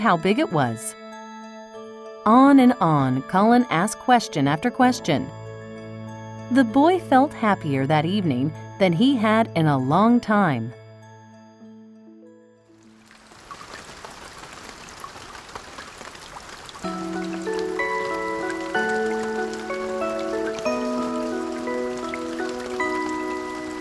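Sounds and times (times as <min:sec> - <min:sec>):
speech: 0:00.0 - 0:01.0, 0:02.2 - 0:05.4, 0:06.5 - 0:10.8
soft sustained melodic music bed: 0:00.0 - 0:13.7, 0:16.8 - 0:23.8
heavy rain pattering and hissing: 0:13.0 - 0:23.8.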